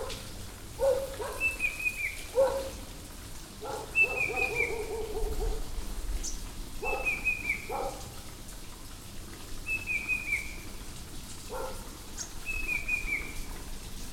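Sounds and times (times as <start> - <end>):
background hiss: 0.0 - 14.1
Banded bay cuckoo Cacomantis sonneratii calling: 1.4 - 2.2, 4.0 - 4.9, 6.9 - 7.7, 9.7 - 10.6, 12.5 - 13.4.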